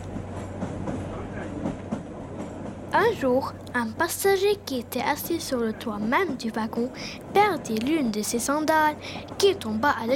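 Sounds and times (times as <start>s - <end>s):
train rolling along tracks with rhythmic clatter of wheels: 0.0s - 10.1s
speech: 2.9s - 10.1s.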